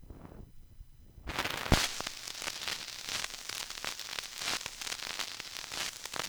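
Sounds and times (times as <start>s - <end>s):
vinyl crackle: 1.2s - 6.2s.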